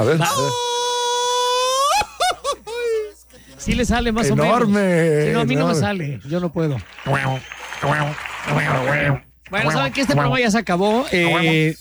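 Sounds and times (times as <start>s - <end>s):
speech: 0.0s - 0.7s, 3.6s - 11.7s
mariachi grito festive yelping shout from a single voice: 0.2s - 3.1s.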